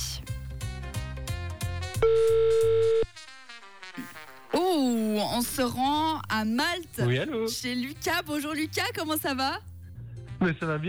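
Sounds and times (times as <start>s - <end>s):
upbeat music: 0.0s - 10.8s
telephone ringback tone: 2.0s - 3.1s
speech: 4.8s - 9.7s, 10.4s - 10.8s.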